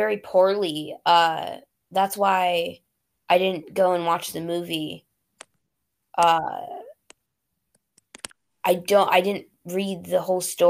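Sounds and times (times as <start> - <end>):
speech: 0.0 - 5.1, 6.2 - 6.8, 8.6 - 10.6
computer mouse clicks: 7.0 - 8.4.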